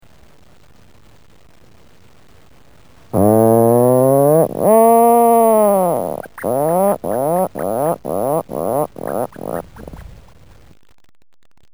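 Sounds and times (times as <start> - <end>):
Atlantic puffin Fratercula arctica calling: 3.2 - 10.2.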